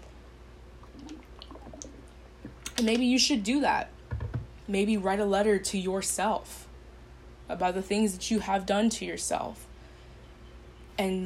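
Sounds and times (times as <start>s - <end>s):
person drinking water: 0.8s - 2.7s
speech: 2.8s - 4.0s, 4.7s - 6.6s, 7.5s - 9.7s, 11.0s - 11.2s.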